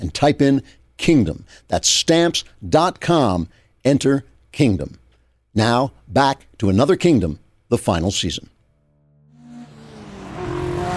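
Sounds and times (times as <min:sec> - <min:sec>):
speech: 0:00.1 - 0:05.0, 0:05.6 - 0:08.5
Mercedes car engine accelerating through the night: 0:09.2 - 0:10.9.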